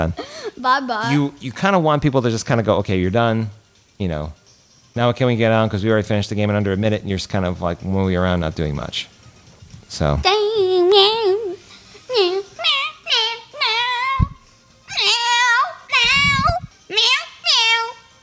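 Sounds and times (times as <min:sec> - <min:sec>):
speech: 0:00.0 - 0:04.4, 0:05.0 - 0:09.1, 0:09.9 - 0:11.1
person imitating a cat meowing: 0:12.7 - 0:17.7.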